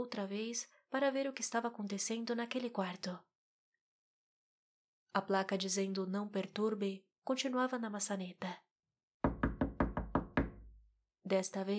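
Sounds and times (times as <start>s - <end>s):
speech: 0.0s - 3.3s, 5.1s - 8.6s, 11.3s - 11.7s
firm knocking on a wooden hotel room door: 9.2s - 10.8s.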